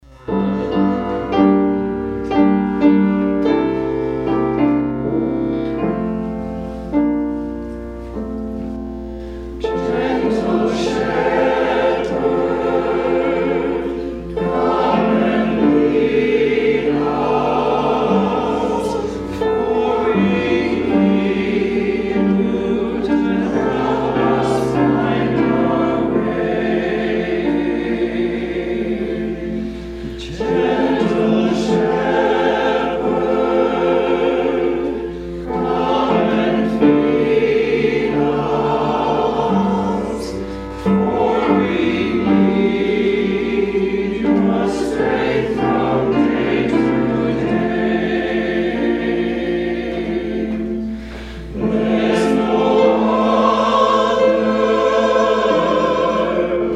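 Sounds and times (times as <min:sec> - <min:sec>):
hymn: 0:00.0 - 0:56.7.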